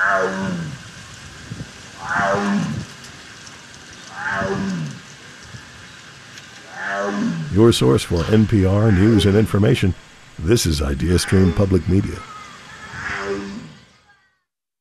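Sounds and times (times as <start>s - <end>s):
Sumatran tiger roaring at a zoo: 0.0s - 0.9s, 2.0s - 3.0s, 4.1s - 5.0s, 6.6s - 12.2s, 12.9s - 13.8s
faint hiss: 0.0s - 14.3s
speech: 0.1s - 0.7s, 7.6s - 12.3s.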